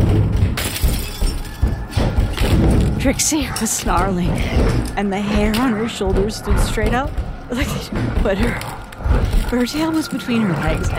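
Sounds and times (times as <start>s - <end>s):
music box and lamp crashing to the floor: 0.0s - 3.0s
glass breaking: 0.1s - 3.0s
speech: 3.0s - 10.9s.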